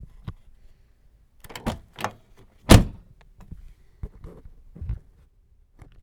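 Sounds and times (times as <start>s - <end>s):
car door: 1.5s - 3.0s.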